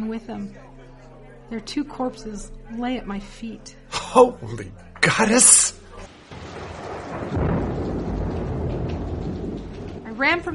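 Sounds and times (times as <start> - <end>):
speech: 0.0 - 0.8, 1.5 - 5.7, 10.2 - 10.5
heavy rain in a wild storm: 5.4 - 10.5
thunder rumbling in a wild storm: 6.1 - 10.5.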